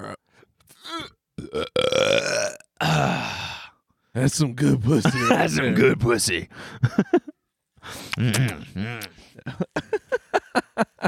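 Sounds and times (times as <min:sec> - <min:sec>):
loud drawn-out belch: 0:00.9 - 0:03.1
speech: 0:04.2 - 0:07.2, 0:08.2 - 0:09.8.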